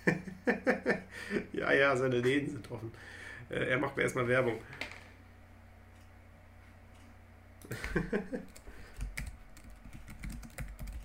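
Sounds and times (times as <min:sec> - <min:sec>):
speech: 0:00.5 - 0:04.8, 0:07.7 - 0:08.6
typing on a computer keyboard: 0:08.4 - 0:11.0.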